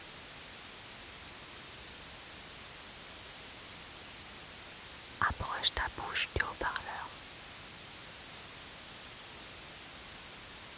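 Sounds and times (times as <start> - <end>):
white noise: 0.0 - 10.7
speech: 5.2 - 7.2.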